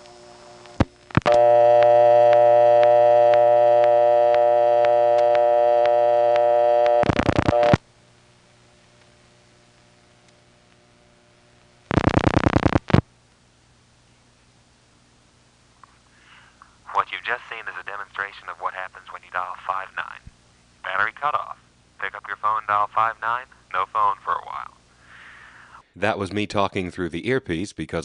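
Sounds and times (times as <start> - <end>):
telephone line humming with a steady tone: 0.0 - 7.9, 11.8 - 13.0, 16.9 - 20.2, 20.8 - 24.8
speech: 26.0 - 28.0.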